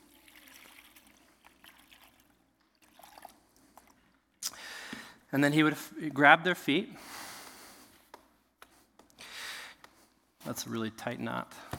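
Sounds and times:
water poured into a basin: 0.0 - 4.0
speech: 5.3 - 7.2, 10.5 - 11.7.

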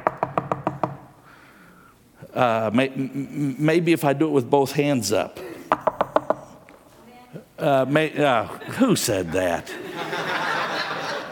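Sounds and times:
knuckles knocking on a hard surface: 0.0 - 1.0, 5.7 - 6.5
speech: 2.4 - 5.5, 7.6 - 10.1
laughter: 8.4 - 11.3.

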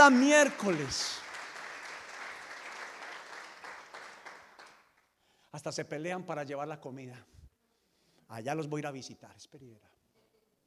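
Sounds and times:
speech: 0.0 - 1.2, 5.5 - 7.4, 8.3 - 9.9
crowd applauding: 0.0 - 5.0.

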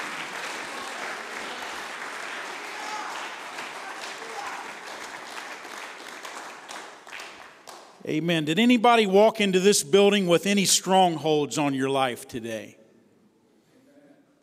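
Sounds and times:
large crowd applauding: 0.0 - 8.0
speech: 8.0 - 12.8.

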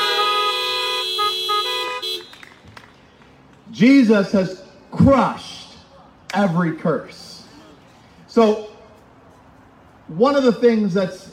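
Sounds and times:
car horns honking: 0.0 - 2.6
speech: 3.8 - 5.5, 6.3 - 7.3, 8.4 - 8.7, 10.1 - 11.3.

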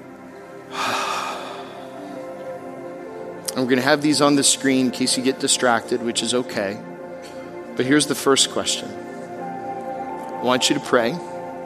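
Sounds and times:
deep breath: 0.4 - 3.1
speech: 3.6 - 7.0, 7.8 - 9.2, 10.4 - 11.3.

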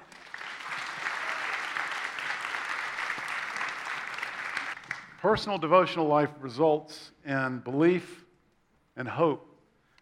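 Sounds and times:
audience applause: 0.0 - 5.2
speech: 5.2 - 8.2, 9.0 - 9.5.

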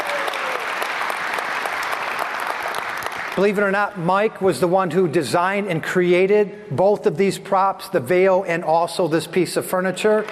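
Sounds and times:
audience applause: 0.0 - 3.6
speech: 3.4 - 10.3.

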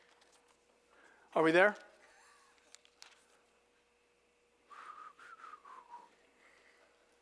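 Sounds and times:
speech: 1.4 - 1.9
weak breathy whistling attempt: 4.7 - 6.8.

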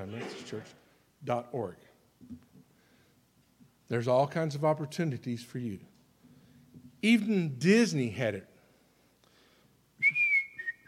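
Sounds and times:
speech: 0.0 - 2.6, 3.9 - 5.9, 7.0 - 8.5
person whistling a film song melody: 10.0 - 10.8.

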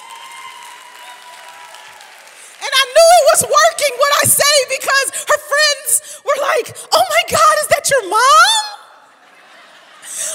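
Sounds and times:
audience applause: 0.0 - 3.2
speech: 2.7 - 8.7
laughter: 8.9 - 10.3.

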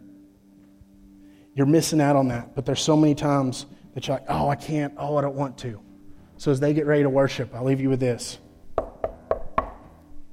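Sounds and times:
speech: 1.6 - 8.4
knocking on a wooden door: 8.8 - 9.9.

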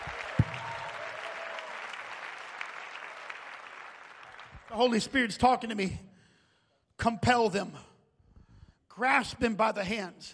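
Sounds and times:
large audience applause: 0.0 - 4.7
speech: 4.7 - 6.1, 7.0 - 7.9, 9.0 - 10.3.

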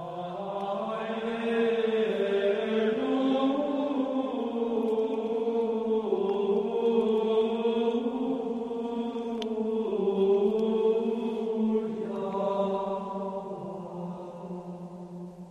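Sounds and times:
monks singing unaccompanied Gregorian chant: 0.0 - 15.5.

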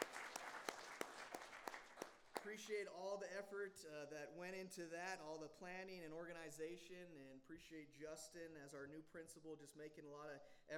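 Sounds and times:
crowd applauding: 0.0 - 2.7
speech: 2.4 - 10.7.

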